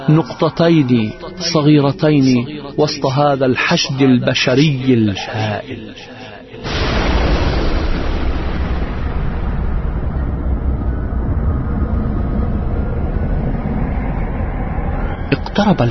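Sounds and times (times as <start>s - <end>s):
speech: 0.1s - 6.7s, 15.6s - 15.8s
explosion blast of the sea exploding into fire: 6.6s - 12.4s
continuous heavy roaring rumble of fire: 6.7s - 15.8s.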